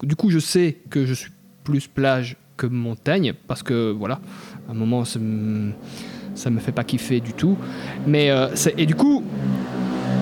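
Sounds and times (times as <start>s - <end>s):
speech: 0.0s - 9.6s
motorcycle engine droning outside: 4.0s - 10.2s.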